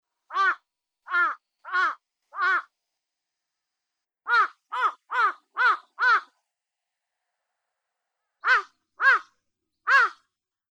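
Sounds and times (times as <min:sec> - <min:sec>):
large-billed crow giving harsh hoarse caws: 0:00.3 - 0:02.7, 0:04.3 - 0:06.3, 0:08.4 - 0:10.3.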